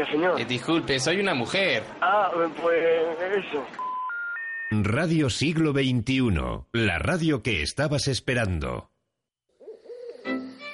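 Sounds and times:
speech: 0:00.0 - 0:03.8, 0:04.7 - 0:08.9
owl hooting: 0:09.6 - 0:10.5.

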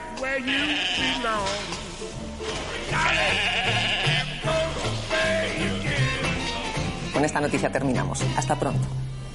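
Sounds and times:
cloned sheep bleating: 0:00.2 - 0:01.7, 0:02.9 - 0:05.9
speech: 0:00.2 - 0:04.1, 0:07.2 - 0:09.1.

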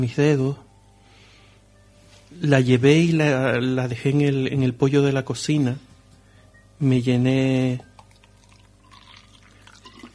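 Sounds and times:
speech: 0:00.0 - 0:00.6, 0:02.3 - 0:05.9, 0:06.8 - 0:07.9
water pouring into a glass at a kitchen counter: 0:08.0 - 0:10.1.

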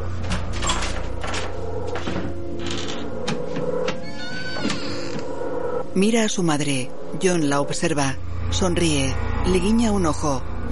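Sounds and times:
room door creaking as it swings: 0:00.1 - 0:05.8
speech: 0:06.0 - 0:10.5.

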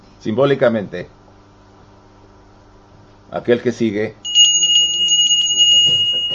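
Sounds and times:
speech: 0:00.2 - 0:01.2, 0:03.3 - 0:04.3
small bell ringing: 0:04.3 - 0:06.3.

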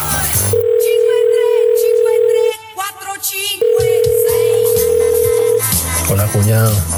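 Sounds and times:
phone ringback tone heard while calling from a car: 0:00.0 - 0:02.6, 0:03.6 - 0:05.8
speech: 0:06.4 - 0:06.9.

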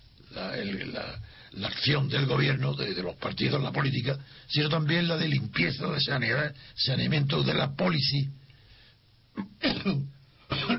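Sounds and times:
speech: 0:00.6 - 0:08.4, 0:09.4 - 0:10.7
person coughing: 0:09.4 - 0:10.7.

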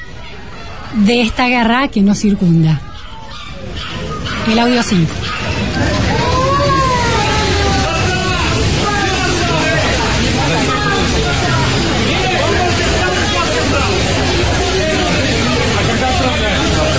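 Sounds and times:
crowd hubbub at a busy train station: 0:00.0 - 0:16.9
many overlapping voices shouting and talking: 0:00.0 - 0:16.9
speech: 0:00.9 - 0:02.9, 0:03.8 - 0:06.2
steady roar of movement: 0:05.1 - 0:08.6.

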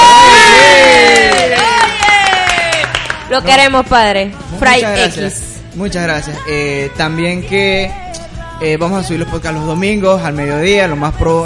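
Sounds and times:
voices shouting and whooping: 0:00.0 - 0:02.8
crowd clapping: 0:00.0 - 0:03.6
speech: 0:03.4 - 0:11.4.

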